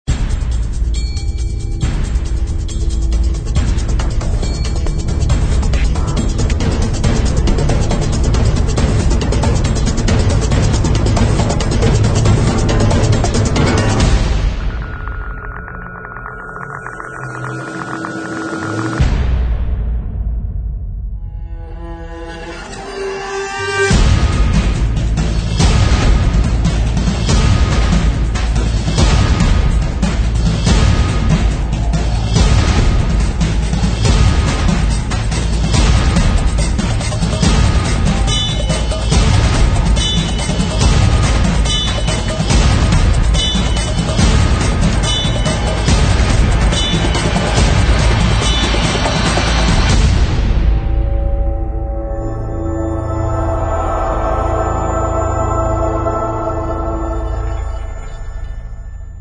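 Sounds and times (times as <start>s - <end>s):
powerful epic percussion-driven action trailer music: 0.1s - 22.0s, 23.4s - 58.4s.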